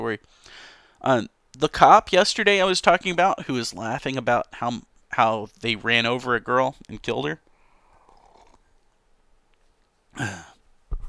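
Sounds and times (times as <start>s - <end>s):
speech: 0.0s - 7.4s, 10.2s - 10.5s
rough throaty cough: 10.2s - 10.6s.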